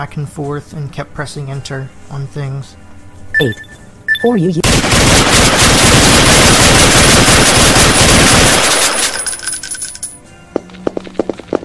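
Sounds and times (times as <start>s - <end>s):
speech: 0.0s - 2.8s, 3.4s - 4.6s
rapid video game gunfire: 4.6s - 9.3s.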